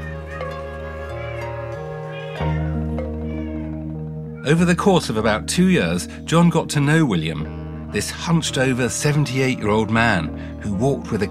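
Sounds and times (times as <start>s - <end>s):
several cats meowing: 0.0s - 4.6s
speech: 4.5s - 11.2s.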